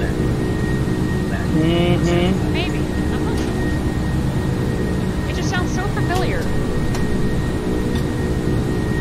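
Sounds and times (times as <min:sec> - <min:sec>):
airplane engine droning: 0:00.0 - 0:08.9
voices: 0:01.2 - 0:03.8, 0:05.3 - 0:06.5.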